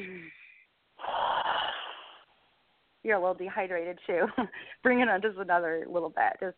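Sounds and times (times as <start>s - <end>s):
long breathy exhalation during a guided breathing exercise: 0.0s - 2.3s
speech: 3.0s - 6.5s.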